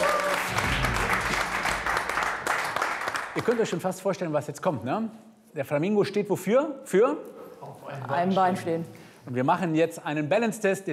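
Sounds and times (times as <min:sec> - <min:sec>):
small group clapping: 0:00.0 - 0:04.0
speech: 0:03.4 - 0:10.9.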